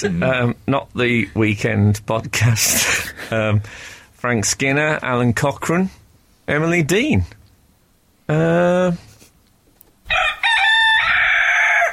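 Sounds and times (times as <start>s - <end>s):
speech: 0.0s - 7.4s, 8.3s - 9.1s
cockerel crowing: 10.0s - 11.9s.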